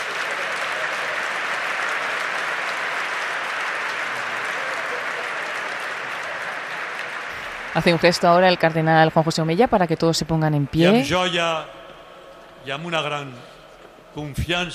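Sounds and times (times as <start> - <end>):
large audience applauding in a cathedral: 0.0 - 11.3
speech: 7.8 - 11.8, 12.6 - 13.5, 14.1 - 14.7.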